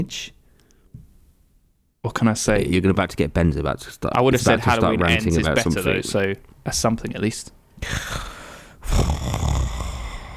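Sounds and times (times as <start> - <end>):
speech: 0.0 - 0.4, 2.0 - 8.3
person imitating snoring: 7.8 - 10.3.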